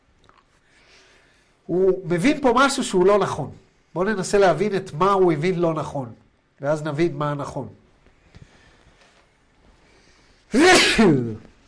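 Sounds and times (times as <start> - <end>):
speech: 1.7 - 7.8, 10.5 - 11.5
sneeze: 10.5 - 11.5.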